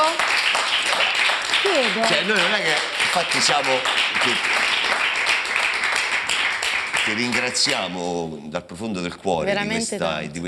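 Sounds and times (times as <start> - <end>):
audience applause: 0.0 - 8.2
speech: 1.8 - 4.8, 7.1 - 10.4.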